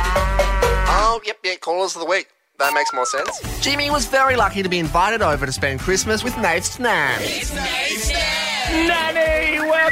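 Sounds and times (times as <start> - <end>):
cow mooing: 0.1 - 1.1
speech: 1.7 - 9.8.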